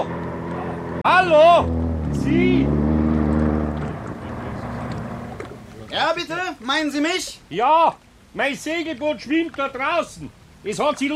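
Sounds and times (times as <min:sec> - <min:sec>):
motorboat engine droning on the water: 0:00.0 - 0:06.0
speech: 0:01.0 - 0:02.8, 0:06.0 - 0:11.1.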